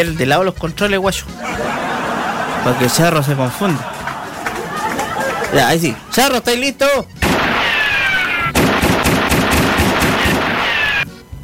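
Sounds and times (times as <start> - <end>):
speech: 0.0 - 2.0, 2.6 - 4.0, 5.5 - 7.2
laughter: 1.4 - 6.5
pistol fire in a video game: 7.2 - 10.8.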